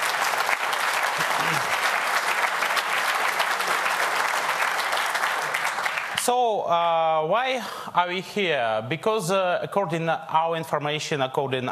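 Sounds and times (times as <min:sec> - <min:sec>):
audience applause: 0:00.0 - 0:06.3
speech: 0:06.3 - 0:11.6.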